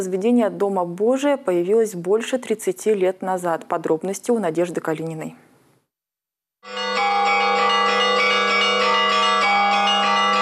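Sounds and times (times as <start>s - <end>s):
speech: 0.0s - 5.5s
church bells of a newly consecrated church pealing: 6.6s - 10.4s.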